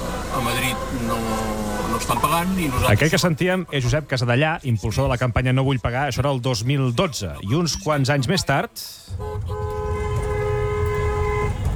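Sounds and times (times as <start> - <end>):
car horn honking at toll booths: 0.0 - 3.4, 9.1 - 11.7
steady rumble of traffic and engine noise: 0.0 - 4.1, 9.0 - 11.7
speech: 0.4 - 9.6.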